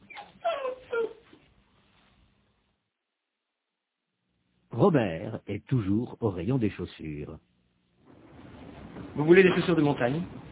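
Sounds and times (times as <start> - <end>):
dog whimpering: 0.0 - 1.4
speech: 4.8 - 7.5, 9.2 - 10.4.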